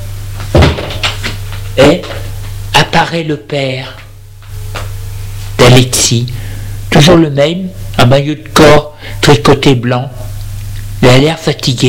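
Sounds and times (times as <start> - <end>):
steady low electrical hum: 0.0 - 11.8
kitchen door opening with a solid wooden thud and clunk: 0.5 - 1.4
speech: 1.8 - 2.2, 3.0 - 4.0, 5.7 - 8.9, 9.5 - 10.2, 11.0 - 11.8.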